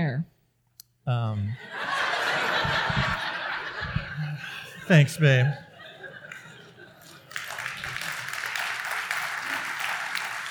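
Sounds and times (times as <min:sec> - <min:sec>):
speech: 0:01.1 - 0:01.9, 0:04.9 - 0:05.7
laughter: 0:01.6 - 0:10.4
audience applause: 0:06.2 - 0:10.4.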